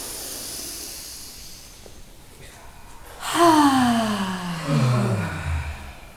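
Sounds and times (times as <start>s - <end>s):
deep noisy abdominal breathing in: 0.0s - 6.1s
loud voiced sigh with pitch sliding downward: 2.4s - 6.1s.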